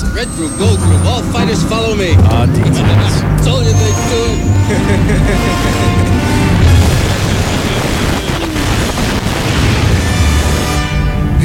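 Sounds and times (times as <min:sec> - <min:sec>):
crackling explosion debris: 0:00.0 - 0:11.1
explosion boom in a movie scene: 0:00.0 - 0:11.3
speech: 0:00.2 - 0:06.3
laughter: 0:00.2 - 0:08.5.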